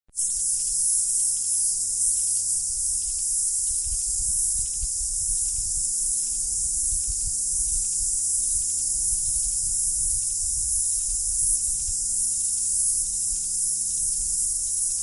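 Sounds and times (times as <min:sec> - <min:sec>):
forest ambience on a falls track: 0:00.2 - 0:15.0.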